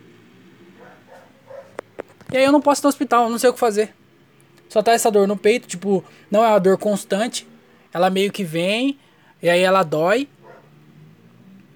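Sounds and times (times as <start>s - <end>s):
dog barking: 0.8s - 1.8s, 10.3s - 10.8s
speech: 2.3s - 4.0s, 4.7s - 10.4s.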